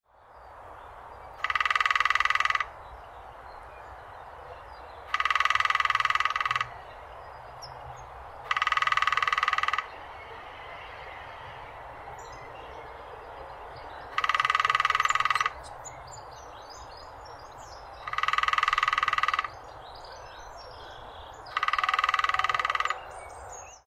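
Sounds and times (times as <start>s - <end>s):
lesser spotted woodpecker: 1.4s - 2.7s, 5.1s - 6.8s, 8.4s - 10.0s, 14.1s - 19.7s, 20.8s - 23.8s.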